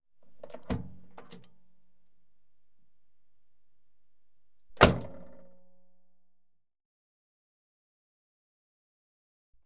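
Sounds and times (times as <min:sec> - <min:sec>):
tin car door opening, car exterior: 0:00.2 - 0:01.8, 0:04.7 - 0:05.5.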